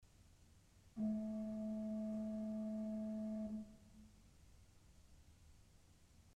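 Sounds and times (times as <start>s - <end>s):
Principal 4' organ pipes playing A: 1.0s - 4.1s.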